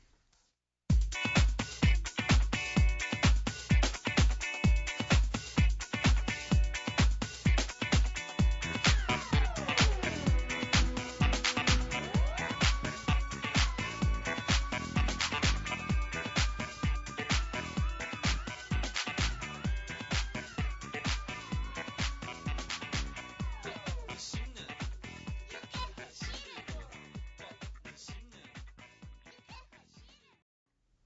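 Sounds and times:
Korean band song with pounding beat and synth: 0.9s - 29.7s.

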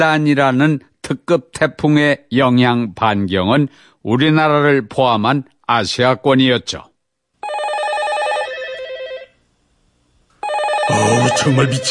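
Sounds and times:
speech: 0.0s - 6.9s, 10.9s - 11.8s
telephone bell ringing in a finance company office: 7.4s - 9.4s, 10.4s - 11.8s.

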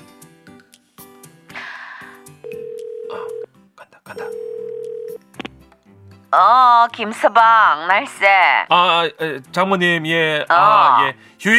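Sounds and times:
telephone ringback tone: 2.4s - 3.5s, 4.2s - 5.2s
speech: 6.3s - 11.5s.

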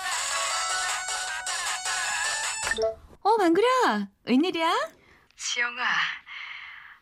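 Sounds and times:
bright electronic phone ringtone: 0.2s - 3.0s
speech: 2.8s - 6.2s.

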